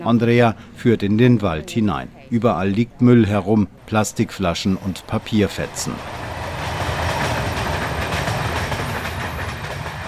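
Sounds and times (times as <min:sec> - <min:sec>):
speech: 0:00.0 - 0:06.2
train rattling past behind a forest in Hungary: 0:03.8 - 0:10.0.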